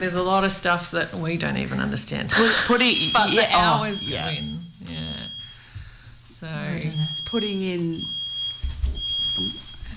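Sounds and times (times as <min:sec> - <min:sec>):
speech: 0:00.0 - 0:05.0, 0:06.4 - 0:08.2, 0:09.4 - 0:09.6
smoke alarm emitting shrill high-pitched beeps: 0:02.4 - 0:06.0, 0:06.7 - 0:09.9.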